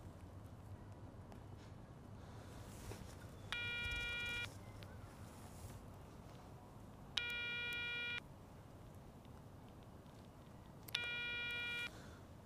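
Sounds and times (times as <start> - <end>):
quiet hum: 0.0 - 12.4
outgoing telephone call ringback tone with no answer: 3.6 - 4.5, 7.2 - 8.2, 11.0 - 11.9.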